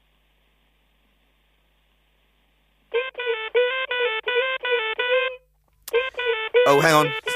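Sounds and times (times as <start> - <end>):
mobile phone ringtone with bright electronic melody: 2.9 - 7.3
speech: 6.7 - 7.3.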